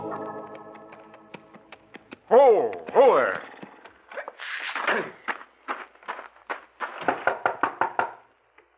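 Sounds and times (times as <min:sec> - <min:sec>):
man speaking: 0:02.3 - 0:03.7
knocking on a door: 0:07.1 - 0:08.2.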